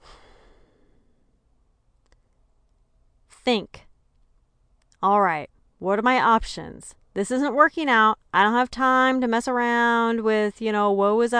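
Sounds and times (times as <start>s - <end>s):
one long airy deep breath: 0.0s - 1.4s
speech: 3.4s - 3.8s, 5.0s - 11.3s.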